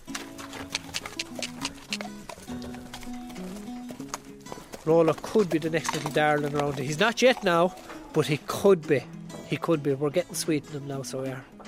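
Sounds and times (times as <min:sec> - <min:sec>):
rescue racehorse hooves clip-clopping: 0:00.0 - 0:08.8
speech: 0:04.8 - 0:11.5.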